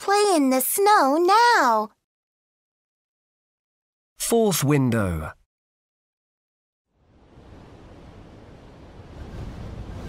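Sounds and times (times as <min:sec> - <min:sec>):
speech: 0:00.1 - 0:02.0, 0:04.3 - 0:05.4
strong wind blowing on a cloudy day: 0:07.0 - 0:10.0.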